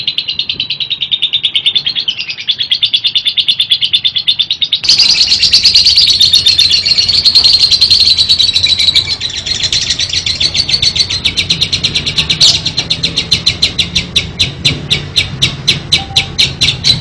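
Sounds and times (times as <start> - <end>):
lovebird song of fast high scratchy chirps: 0.0 - 16.9.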